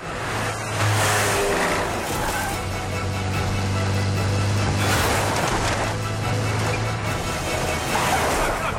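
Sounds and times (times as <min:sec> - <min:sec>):
car engine rumbling and revving: 0:00.0 - 0:08.7.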